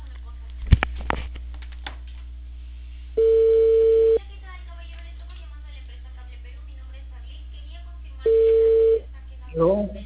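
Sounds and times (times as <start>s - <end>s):
ringback tone of an outgoing telephone call: 3.2s - 4.2s, 8.3s - 9.0s.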